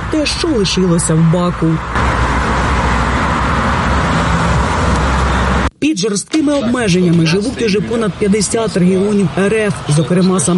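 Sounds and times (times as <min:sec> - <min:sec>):
car engines rumbling in a fuel queue at a filling station in Russia: 0:00.0 - 0:10.5
road noise: 0:00.0 - 0:10.5
speech: 0:00.1 - 0:02.2, 0:05.8 - 0:10.5.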